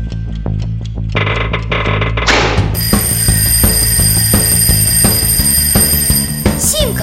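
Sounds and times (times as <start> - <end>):
rhythmic knocks: 0.1 - 7.0
mechanical alarm clock ringing: 2.8 - 7.0.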